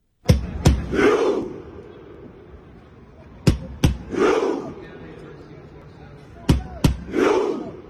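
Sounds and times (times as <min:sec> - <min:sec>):
booming beats of football supporters' rowing chant: 0:00.2 - 0:01.6, 0:03.4 - 0:04.4, 0:06.4 - 0:07.3
huge stadium crowd of Norway football supporters roaring: 0:00.3 - 0:07.8.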